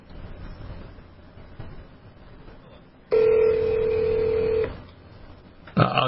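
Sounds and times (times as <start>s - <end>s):
telephone keypad tone: 3.1s - 4.8s.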